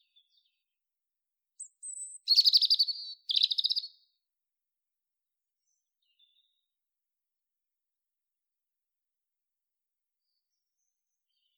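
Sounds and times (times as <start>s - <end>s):
European robin rattling trills: 1.6s - 3.9s.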